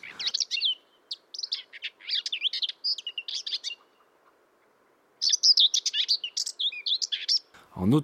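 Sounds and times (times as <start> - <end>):
common whitethroat singing: 0.0 - 7.6
speech: 7.8 - 8.0.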